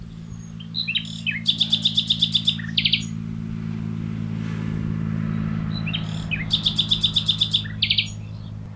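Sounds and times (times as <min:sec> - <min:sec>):
nightingale singing: 0:00.0 - 0:03.2, 0:05.7 - 0:08.6
low rumble of traffic: 0:00.0 - 0:08.7.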